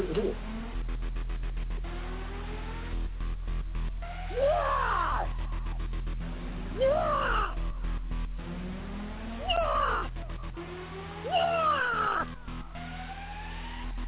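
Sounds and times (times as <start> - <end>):
low steady hum: 0.0 - 14.0
bird calling in harsh crow-like caws: 9.4 - 10.1, 11.3 - 12.3.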